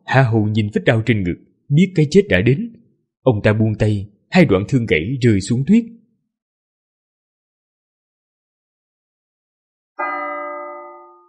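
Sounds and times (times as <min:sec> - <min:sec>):
speech: 0:00.1 - 0:06.0
distant palace bell tolling: 0:10.0 - 0:11.2.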